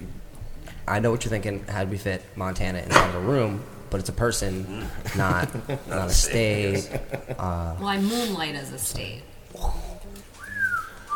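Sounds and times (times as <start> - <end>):
speech: 0.9 - 9.8
laughter: 4.7 - 7.7
person whistling: 10.4 - 11.1.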